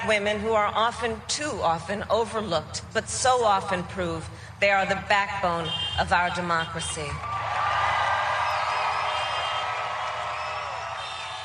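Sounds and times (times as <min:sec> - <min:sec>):
speech: 0:00.0 - 0:07.3
large crowd cheering and shouting: 0:07.2 - 0:11.4.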